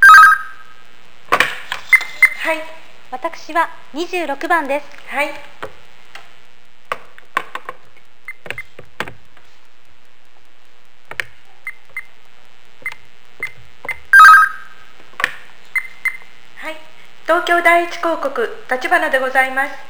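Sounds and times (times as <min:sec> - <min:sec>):
loud brief electronic telephone ring: 0:00.0 - 0:00.6, 0:12.8 - 0:14.8
sharp clicks and taps: 0:01.3 - 0:02.4, 0:04.3 - 0:09.7, 0:11.0 - 0:12.2, 0:12.8 - 0:14.4, 0:15.0 - 0:16.3
speech: 0:02.5 - 0:05.5, 0:17.3 - 0:19.8.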